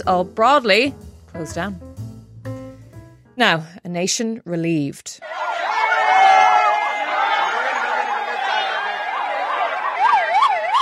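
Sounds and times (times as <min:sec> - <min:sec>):
speech: 0:00.0 - 0:01.9, 0:03.4 - 0:05.4
crowd cheering and voices shouting: 0:05.2 - 0:10.8
several ambulance sirens wailing in up-and-down sweeps: 0:05.2 - 0:10.8.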